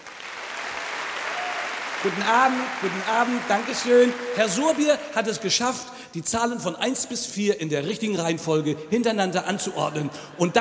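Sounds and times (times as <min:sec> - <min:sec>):
studio audience applause at a televised quiz show: 0:00.0 - 0:05.2
speech: 0:02.0 - 0:10.5.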